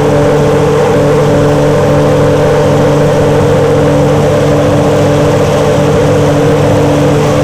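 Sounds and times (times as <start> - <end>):
Ferrari F1 car engine idling: 0.0 - 7.4.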